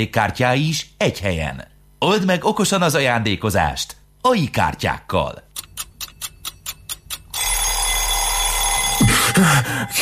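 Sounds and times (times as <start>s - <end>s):
speech: 0.0s - 5.4s, 9.4s - 10.0s
alarm clock ringing with metallic jangle: 6.2s - 10.0s.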